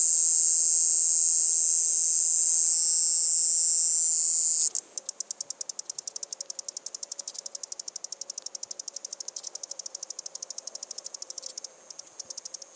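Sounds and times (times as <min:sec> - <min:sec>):
cicada calling in Arizona: 0:00.0 - 0:12.7.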